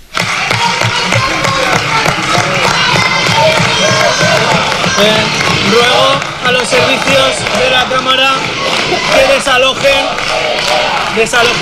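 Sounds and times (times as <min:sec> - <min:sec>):
protesting teachers shouting and chanting from a parliament public gallery: 0:00.0 - 0:11.6
speech: 0:05.0 - 0:11.6.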